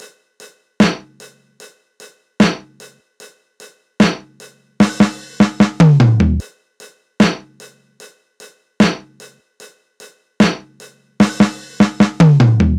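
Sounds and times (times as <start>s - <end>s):
drum loop at 150 BPM: 0.8s - 1.2s, 2.4s - 2.8s, 4.0s - 6.4s, 7.2s - 7.6s, 8.8s - 9.2s, 10.4s - 12.7s.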